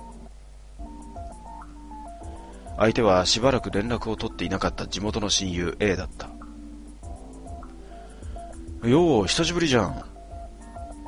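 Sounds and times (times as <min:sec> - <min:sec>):
mobile phone ringtone electronic melody in a student dormitory room: 0:00.8 - 0:04.6, 0:07.1 - 0:11.0
speech: 0:02.8 - 0:06.3, 0:08.8 - 0:10.1.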